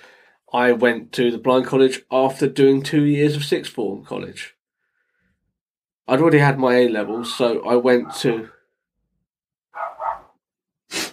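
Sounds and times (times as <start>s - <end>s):
speech: 0.5s - 4.6s, 6.1s - 8.6s
dog barking: 7.2s - 8.5s, 9.7s - 10.4s.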